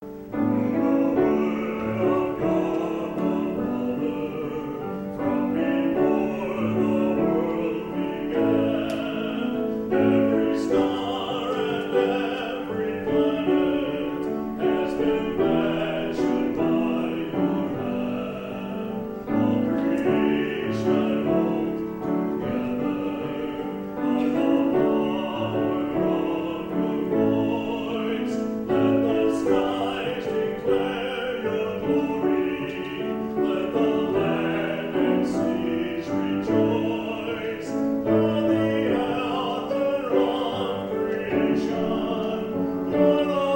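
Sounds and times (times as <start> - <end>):
solo performer: 0.0 - 43.5.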